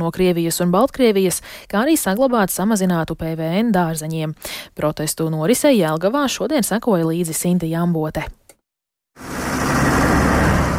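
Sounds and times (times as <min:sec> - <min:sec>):
speech: 0:00.0 - 0:08.4
convoy of farmers' tractors with loud diesel rumble on protest drive: 0:09.2 - 0:10.7.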